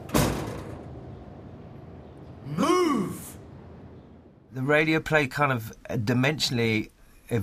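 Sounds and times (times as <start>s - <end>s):
door bursting open with bang: 0.0s - 1.2s
resonant rumble: 0.0s - 4.8s
speech: 4.6s - 7.4s.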